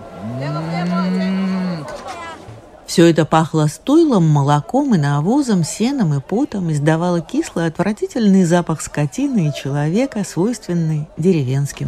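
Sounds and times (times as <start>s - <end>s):
cow tied to a fence mooing: 0.0s - 2.0s
speech: 2.9s - 11.8s.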